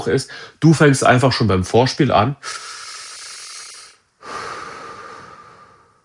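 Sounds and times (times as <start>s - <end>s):
speech: 0.0s - 2.8s
deep conscious belly breathing: 2.4s - 6.0s.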